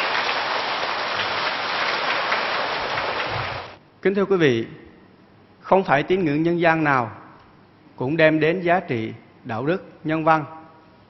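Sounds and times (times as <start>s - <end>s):
large audience applauding: 0.0s - 3.8s
speech: 4.0s - 4.8s, 5.6s - 7.2s, 8.0s - 10.6s.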